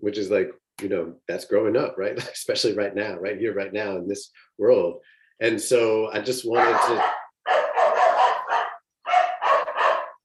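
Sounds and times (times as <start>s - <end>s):
speech: 0.0s - 7.2s
dog walking by barking: 6.5s - 10.2s.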